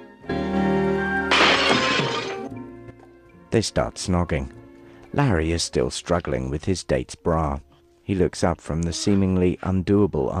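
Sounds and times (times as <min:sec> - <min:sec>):
glass tabletop shattering from a shoe smashing through: 0:01.2 - 0:02.5
speech: 0:03.6 - 0:04.6, 0:05.2 - 0:10.3.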